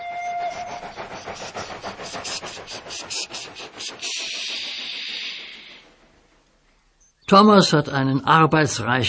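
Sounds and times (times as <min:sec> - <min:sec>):
diesel locomotive horn blast: 0:00.0 - 0:00.7
long hiss of released air: 0:00.0 - 0:06.5
rhythmic pulsing locomotive engine chug: 0:00.0 - 0:07.1
speech: 0:07.3 - 0:09.0.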